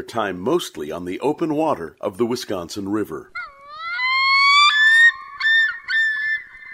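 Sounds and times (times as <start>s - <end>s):
speech: 0.0s - 3.5s
common loon wailing and yodeling: 3.3s - 6.7s.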